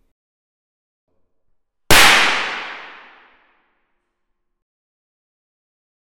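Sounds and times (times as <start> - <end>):
thin wire exploding from capacitor discharge: 1.9 - 3.3.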